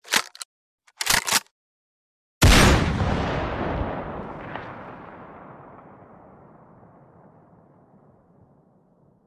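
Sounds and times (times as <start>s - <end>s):
sniper rifle reloading: 0.0s - 1.5s
sniper rifle shot: 2.4s - 5.8s.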